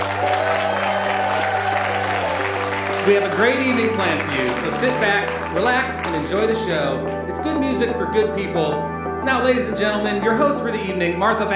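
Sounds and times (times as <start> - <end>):
audience applause at a live music show in Winston-Salem: 0.0 - 6.6
speech: 3.1 - 11.5.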